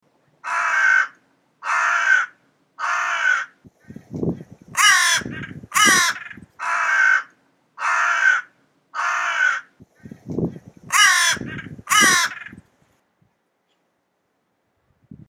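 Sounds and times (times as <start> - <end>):
crow calls: 0.4 - 3.6, 4.8 - 9.8, 10.9 - 12.6.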